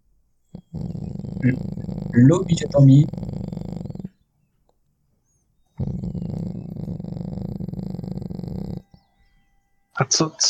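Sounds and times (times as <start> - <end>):
person imitating a cat purring during a tabletop role-playing session: 0.5 - 4.2, 5.8 - 9.0
speech: 1.4 - 3.2, 10.1 - 10.4.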